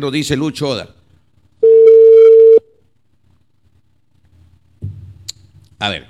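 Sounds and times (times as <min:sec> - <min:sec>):
speech: 0:00.0 - 0:01.0, 0:05.8 - 0:06.0
ringing tone of an outgoing telephone call: 0:01.6 - 0:02.7.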